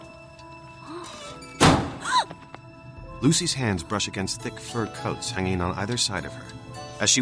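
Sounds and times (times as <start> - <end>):
wooden wardrobe door creaky rattle as it settles: 0.9 - 1.8
wooden wardrobe door blowing shut: 1.1 - 2.0
speech: 3.2 - 7.2.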